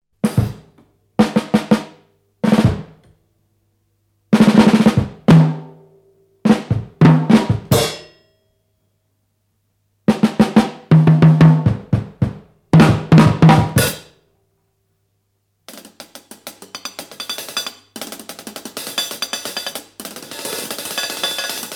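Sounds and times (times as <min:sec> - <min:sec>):
drum kit: 0:00.2 - 0:03.1, 0:04.3 - 0:05.8, 0:06.4 - 0:08.2, 0:10.1 - 0:14.2, 0:15.7 - 0:21.7.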